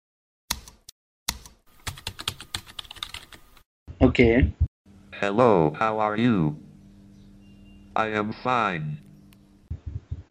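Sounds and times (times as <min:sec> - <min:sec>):
typing on a computer keyboard: 0:00.5 - 0:03.4
speech: 0:04.0 - 0:04.6, 0:05.2 - 0:06.6, 0:08.0 - 0:09.1.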